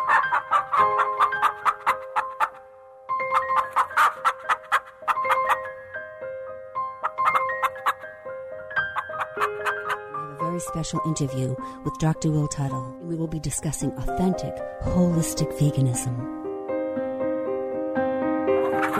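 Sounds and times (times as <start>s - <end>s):
rapid chicken clucks and squawks: 0.0s - 2.6s, 3.2s - 5.7s, 7.0s - 8.0s, 8.8s - 10.1s, 18.6s - 18.9s
bright melodic song with sustained keyboard-like notes: 0.0s - 18.9s
speech: 10.8s - 16.4s.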